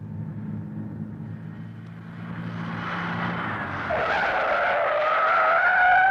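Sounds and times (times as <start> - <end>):
truck engine rumbling: 0.0 - 6.0
truck tires skidding to a stop: 1.5 - 6.0.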